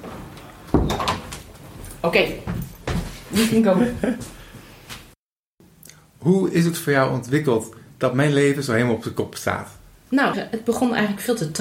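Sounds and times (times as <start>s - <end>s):
kitchen door swinging shut with a solid thud: 0.7s - 1.3s
speech: 2.0s - 2.5s, 3.3s - 4.4s, 6.2s - 11.5s.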